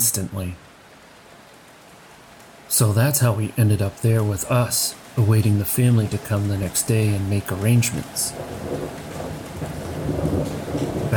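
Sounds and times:
heavy rain pouring: 0.0s - 11.1s
speech: 0.2s - 0.7s, 2.7s - 11.1s
deep thunder rumbling: 5.2s - 11.1s.

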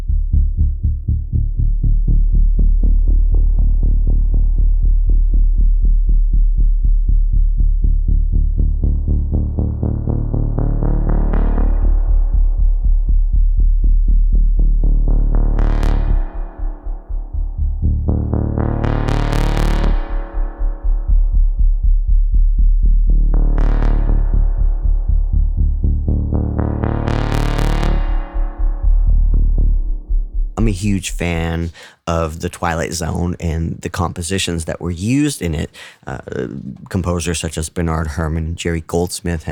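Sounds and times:
deep throbbing synth bass through spring reverb: 0.0s - 31.2s
speech: 30.9s - 39.4s.

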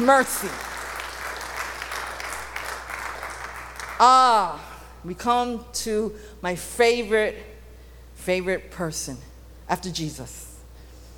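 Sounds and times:
speech: 0.0s - 0.7s, 4.0s - 7.5s, 8.2s - 10.5s
audience applauding in a large room: 0.0s - 4.0s.

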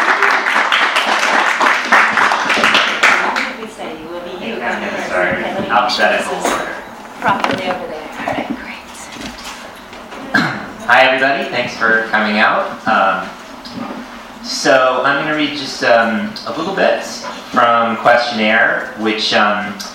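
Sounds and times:
audience applause: 0.0s - 3.6s
scattered voices and murmuring talk: 2.9s - 19.9s
speech: 5.2s - 8.0s, 10.9s - 13.4s, 14.4s - 19.9s.

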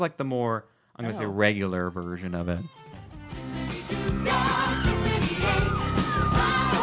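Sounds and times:
speech: 0.0s - 6.5s
upbeat theme park ride song with heavy bass and layered melody: 3.2s - 6.8s
crowd of riders including kids screaming and yelling: 4.4s - 6.8s.

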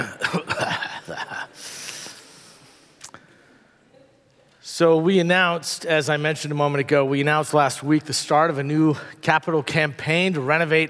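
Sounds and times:
roomful of people coughing at once: 0.0s - 2.1s
speech: 4.8s - 10.8s.

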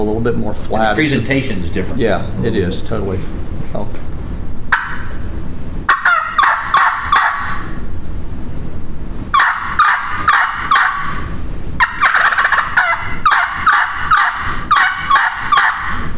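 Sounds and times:
speech: 0.0s - 4.1s
imitated wild turkey gobbler yelping and clucking: 4.7s - 7.8s, 9.3s - 16.1s.

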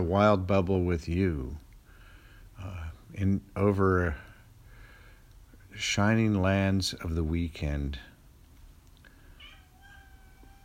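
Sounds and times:
speech: 0.0s - 1.6s, 2.6s - 4.3s, 5.8s - 8.1s
steady low hum: 0.0s - 10.6s
cat meowing on a balcony: 9.4s - 10.6s.

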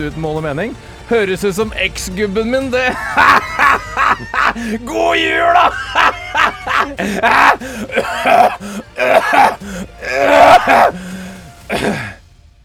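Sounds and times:
speech: 0.0s - 11.1s, 11.7s - 12.1s
laughter: 2.8s - 10.9s
person coughing: 6.7s - 9.8s, 11.7s - 12.2s.

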